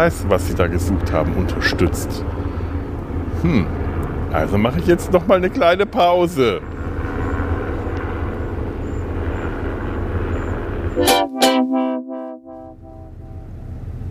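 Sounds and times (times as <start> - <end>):
speech: 0.0 - 2.4, 3.4 - 7.2
red helicopter droning overhead while circling: 0.0 - 14.1
brief tonal honk: 11.0 - 13.6.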